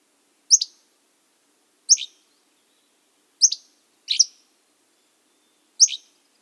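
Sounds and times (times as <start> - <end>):
Hammond's Flycatcher dry burry calls in the Olympics: 0.5 - 0.9, 1.9 - 2.3, 3.4 - 4.5, 5.6 - 6.4.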